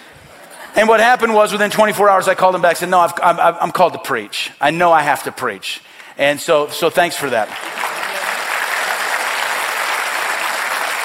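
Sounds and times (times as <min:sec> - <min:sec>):
speech: 0:00.8 - 0:07.8
room full of people clapping: 0:07.2 - 0:11.0.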